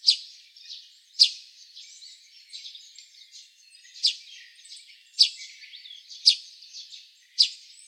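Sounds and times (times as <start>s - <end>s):
Eurasian tree sparrow chirping: 0.0s - 7.8s.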